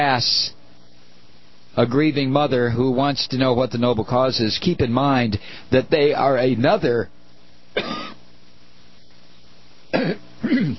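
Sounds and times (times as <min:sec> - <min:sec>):
speech: 0:00.0 - 0:00.6, 0:01.8 - 0:07.2, 0:07.8 - 0:08.1, 0:10.0 - 0:10.7
bad harsh cough: 0:07.8 - 0:08.2, 0:09.9 - 0:10.7.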